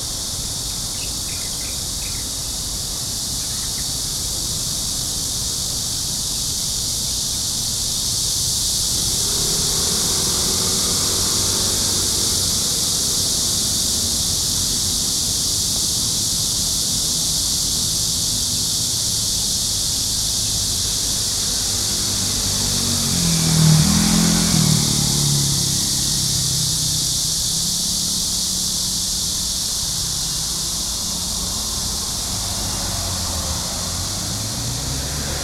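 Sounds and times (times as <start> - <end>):
insects droning from a small thicket in Taipei: 0.0 - 35.4
low city traffic rumbling on Xinhai Road in Taipei: 0.0 - 35.4
faint bird chirps: 0.9 - 2.3
vehicle passing: 8.8 - 14.5, 20.2 - 27.2, 30.2 - 35.4.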